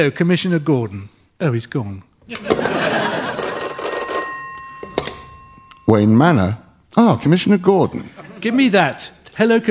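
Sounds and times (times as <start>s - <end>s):
speech: 0.0s - 3.0s, 5.9s - 9.7s
laughter: 2.3s - 3.6s, 8.0s - 8.8s
telephone bell ringing: 2.9s - 5.9s.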